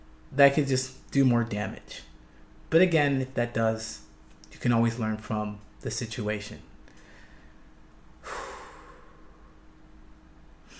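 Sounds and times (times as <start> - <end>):
speech: 0.3 - 2.1, 2.7 - 6.7
deep breath: 6.9 - 9.7.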